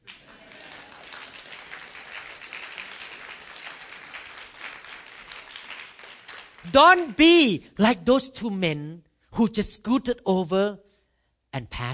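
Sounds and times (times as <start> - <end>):
audience clapping: 0.0 - 7.4
speech: 6.7 - 10.8, 11.6 - 11.9.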